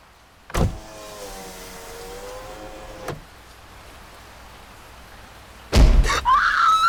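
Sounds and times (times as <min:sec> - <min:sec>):
car's electric window humming downward: 0:00.5 - 0:03.3
loud thump: 0:05.8 - 0:06.1.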